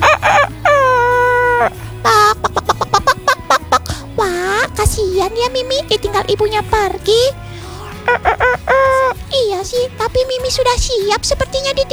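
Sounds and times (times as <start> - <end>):
rooster crowing: 0.0 - 4.1, 7.6 - 9.3
laughter: 0.0 - 10.0
short clipped clucking notes: 0.0 - 11.9
speech: 5.2 - 7.4, 9.6 - 11.9.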